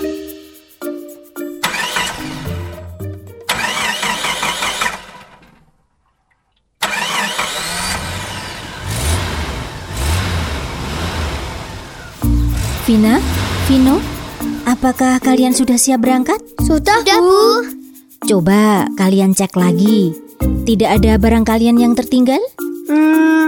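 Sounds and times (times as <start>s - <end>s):
family car engine starting and revving: 1.6s - 2.9s, 3.5s - 5.7s, 6.8s - 15.4s
speech: 12.9s - 14.1s, 14.7s - 23.4s.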